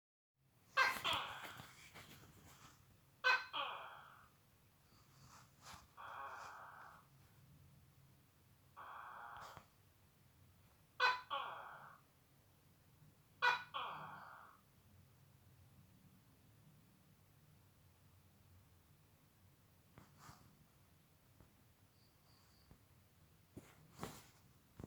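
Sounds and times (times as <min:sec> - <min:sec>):
gecko calling: 0:00.8 - 0:01.8, 0:03.2 - 0:04.2, 0:06.0 - 0:07.0, 0:08.8 - 0:09.6, 0:11.0 - 0:12.0, 0:13.4 - 0:14.6.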